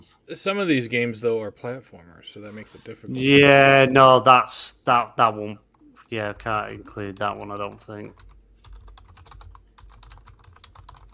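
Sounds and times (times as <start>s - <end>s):
speech: 0.0s - 8.3s
low hum: 0.0s - 11.1s
typing on a computer keyboard: 6.4s - 11.1s.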